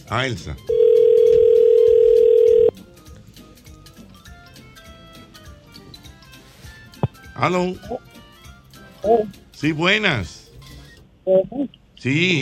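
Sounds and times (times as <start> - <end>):
speech: 0.1 - 0.8, 7.4 - 8.1, 9.0 - 10.4, 11.2 - 12.3
telephone ringing on an outgoing call: 0.7 - 2.7.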